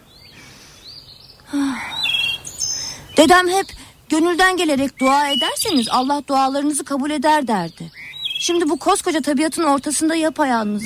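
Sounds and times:
birds chirping outdoors in green countryside: 0.0s - 10.8s
faint steady hiss: 0.0s - 10.8s
speech: 3.2s - 10.8s.

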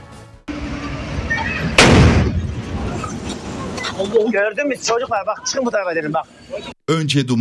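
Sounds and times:
rumble after a natural gas explosion: 0.5s - 3.8s
low noise: 1.1s - 7.3s
natural gas explosion after a kitchen fire in a second-floor home of a four-storey building: 1.6s - 2.9s
speech: 4.0s - 7.3s.

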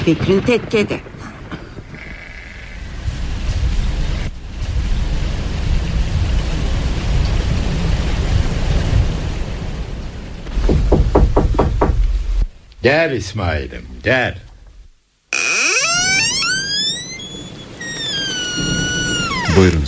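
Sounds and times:
speech: 0.0s - 1.1s, 12.8s - 14.4s, 19.6s - 19.8s
heavy rain during a severe storm: 0.0s - 12.7s, 13.3s - 19.8s
sharp knocks: 10.5s - 12.5s.

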